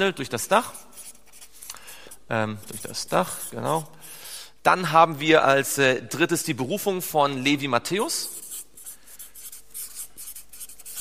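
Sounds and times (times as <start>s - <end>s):
speech: 0.0s - 1.0s, 2.3s - 8.4s
pen scribbling on paper: 0.4s - 1.7s, 2.5s - 4.0s, 8.4s - 10.9s.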